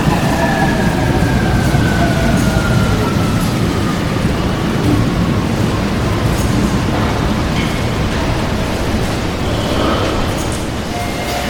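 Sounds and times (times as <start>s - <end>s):
train arriving at station platform: 0.0s - 11.4s.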